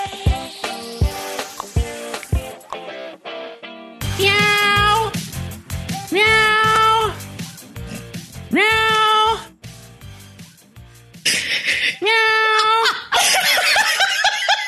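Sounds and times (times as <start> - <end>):
bouncy music bed: 0.0 - 11.8
person imitating cat meows: 4.0 - 5.2, 6.0 - 7.2, 8.5 - 9.6, 11.9 - 12.9
laughter: 12.6 - 14.6.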